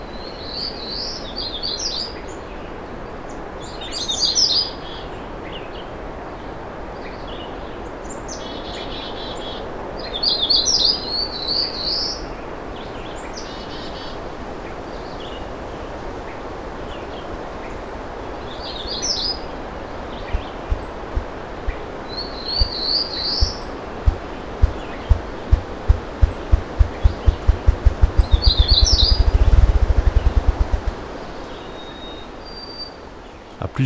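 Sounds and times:
wind rushing through treetops: 0:20.1 - 0:31.9
small birds chirping and trilling: 0:22.6 - 0:31.3.

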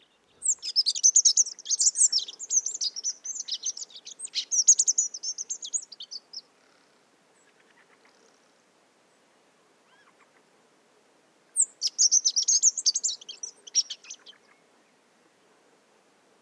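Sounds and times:
Rock Bunting pre-nuptial song in mixed conifer and oak forest: 0:00.0 - 0:08.2, 0:11.6 - 0:14.6.

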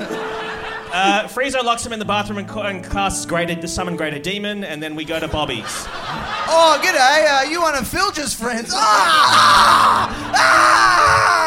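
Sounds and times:
laughter: 0:00.0 - 0:01.4, 0:05.0 - 0:07.9, 0:08.6 - 0:11.4
speech: 0:00.9 - 0:11.2
man screaming in anguish: 0:08.7 - 0:11.4.

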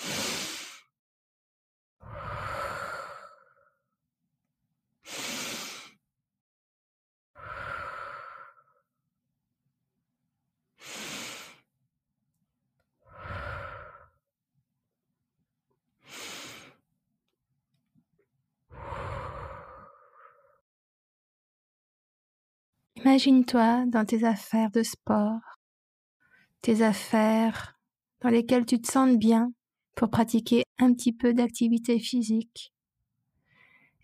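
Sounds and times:
deep breaths during a guided breathing exercise: 0:00.0 - 0:00.9, 0:02.0 - 0:03.9, 0:05.0 - 0:06.0, 0:07.4 - 0:08.9, 0:10.8 - 0:11.7, 0:13.0 - 0:14.2, 0:16.0 - 0:16.9, 0:18.7 - 0:20.6, 0:33.4 - 0:34.0
speech: 0:23.0 - 0:25.6, 0:26.6 - 0:32.8.

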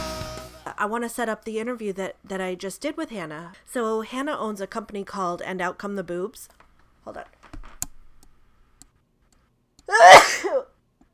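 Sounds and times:
speech: 0:00.8 - 0:07.4, 0:09.9 - 0:10.7
person sneezing: 0:09.9 - 0:10.7.

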